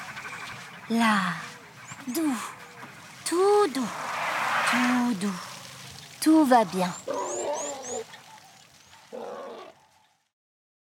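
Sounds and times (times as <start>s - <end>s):
speech: 0.9s - 2.6s, 3.3s - 4.1s, 4.7s - 5.5s, 6.2s - 7.1s
baby elephant squealing and bellowing: 6.9s - 8.1s.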